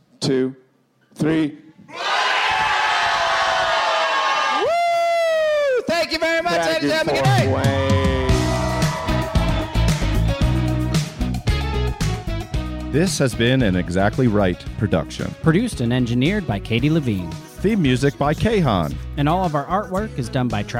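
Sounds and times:
speech: 0.2 - 0.6, 1.2 - 2.0, 6.1 - 8.3, 12.9 - 20.7
group of people yelling loudly together: 1.9 - 5.5, 7.9 - 10.6
bright electronic music: 6.9 - 20.7.

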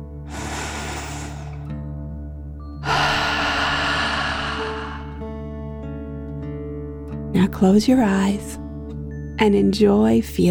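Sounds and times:
deep breath in and out during a children's meditation: 0.0 - 1.8, 2.8 - 5.4
low drone: 0.0 - 1.8, 2.8 - 5.4
speech: 7.4 - 8.6, 9.4 - 10.4.

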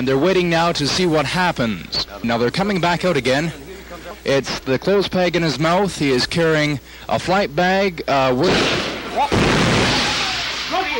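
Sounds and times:
speech: 0.0 - 3.6, 4.2 - 10.0
bomb explosion: 8.4 - 10.7.

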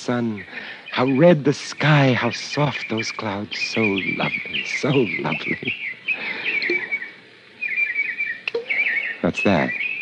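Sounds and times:
speech: 0.0 - 5.8, 9.3 - 9.9
small birds twittering and chirping near a fish pond: 0.0 - 9.9
sharp splashy clicks: 8.4 - 8.8.

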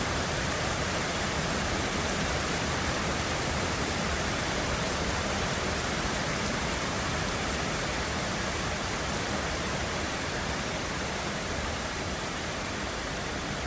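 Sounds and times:
steady rain from a storm over Brisbane in Queensland: 0.0 - 13.6.

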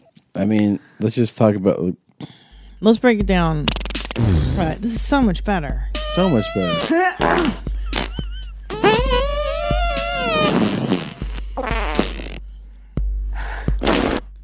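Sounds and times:
speech: 0.4 - 7.7
comic fart sound effects: 3.7 - 4.8, 6.0 - 12.4, 13.7 - 14.4.

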